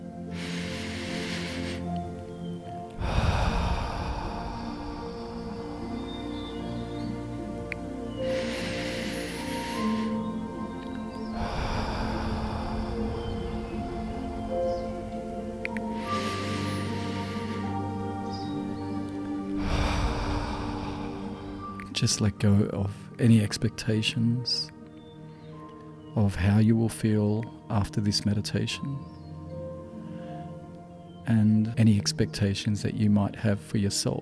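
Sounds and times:
deep breaths in through the nose and out through the mouth: 0.0s - 22.0s, 29.9s - 30.7s
sustained soft music: 0.0s - 34.2s
speech: 22.0s - 24.8s, 26.2s - 29.2s, 31.3s - 34.2s.

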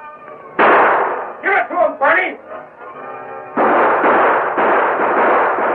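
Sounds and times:
loud rapid volley of gunshots: 0.6s - 1.4s, 3.6s - 5.7s.

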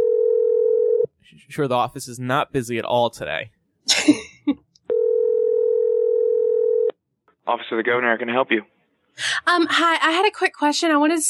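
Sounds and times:
telephone dial tone: 0.0s - 1.1s, 4.9s - 6.9s
speech: 1.5s - 4.6s, 7.5s - 11.2s.

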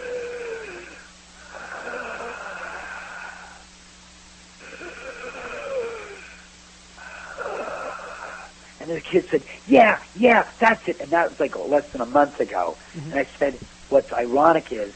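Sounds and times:
person imitating heavy labored breathing: 0.0s - 3.7s, 4.6s - 6.4s, 7.0s - 8.6s, 12.8s - 13.2s
speech: 8.9s - 14.9s.

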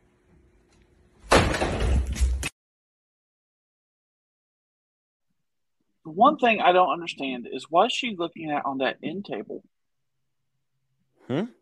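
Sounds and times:
door slamming shut in a played video clip: 1.3s - 2.5s
speech: 6.1s - 9.8s, 11.3s - 11.6s.

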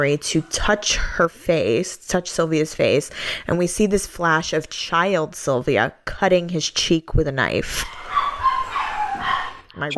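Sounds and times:
speech: 0.0s - 8.0s, 9.8s - 9.9s
dogs barking excitedly with high-pitched yips and whiny barks: 7.8s - 9.7s.

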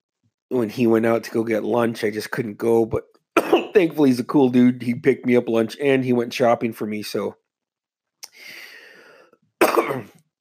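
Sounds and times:
speech: 0.5s - 3.1s, 3.7s - 7.4s, 9.8s - 10.2s
ill person coughing: 3.4s - 3.9s, 9.6s - 10.2s.

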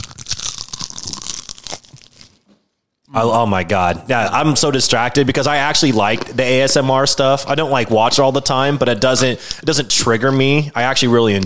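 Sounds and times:
crunchy bite of food taken at a microphone: 0.0s - 2.4s
speech: 3.1s - 11.4s.

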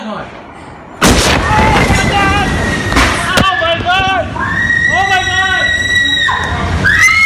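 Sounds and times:
huge explosive boom: 1.0s - 3.5s
sharp blast: 1.0s - 3.6s
roaring, rumbling background: 1.0s - 7.2s.

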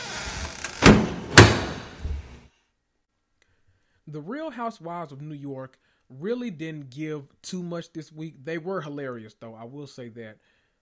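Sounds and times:
door swinging shut with sharp solid knocks: 0.0s - 2.4s
speech: 4.1s - 10.5s.

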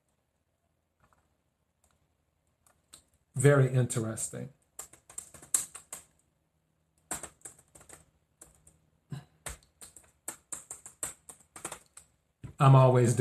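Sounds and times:
speech: 3.4s - 4.6s, 12.6s - 13.2s
computer keyboard keys clacking while typing: 4.8s - 6.1s, 7.1s - 8.7s, 9.4s - 12.1s.

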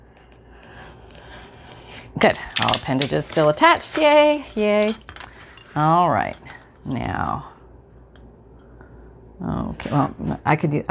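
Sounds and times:
craft knife cutting paper: 0.1s - 4.0s
speech: 2.1s - 5.1s, 5.8s - 7.5s, 9.4s - 10.8s.

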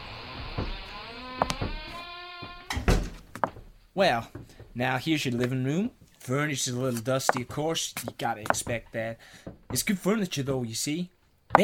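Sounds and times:
door creaking open on stiff unoiled hinges: 0.1s - 4.7s
sharp knocks and clunks: 0.4s - 5.6s, 6.9s - 10.0s, 11.5s - 11.6s
speech: 4.0s - 11.6s.

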